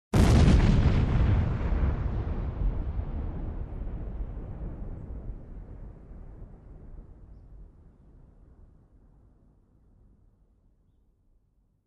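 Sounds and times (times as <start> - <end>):
bomb blast: 0.2 - 7.7.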